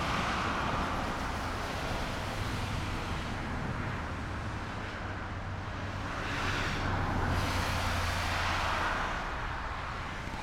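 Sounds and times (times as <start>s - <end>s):
roar of motorway traffic at night: 0.0s - 10.4s
vehicles passing: 0.0s - 10.4s.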